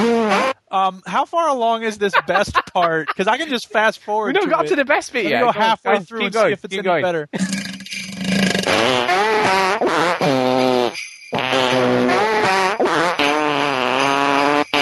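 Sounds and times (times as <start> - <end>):
speech: 0.7 - 7.7
laughter: 1.7 - 6.6
long drawn-out croaking burps: 7.3 - 14.7.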